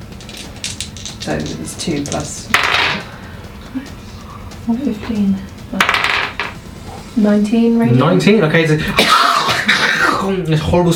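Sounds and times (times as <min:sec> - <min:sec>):
damage dice rolled onto a table: 0:00.1 - 0:03.1, 0:05.8 - 0:06.6
speech: 0:01.2 - 0:03.1, 0:03.7 - 0:04.0, 0:04.7 - 0:06.0, 0:07.2 - 0:09.2, 0:10.2 - 0:10.9.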